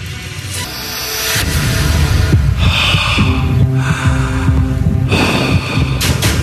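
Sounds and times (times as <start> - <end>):
steady low hum: 0.0 - 6.4
heavy breathing on a reenacted 911 call: 2.3 - 6.4.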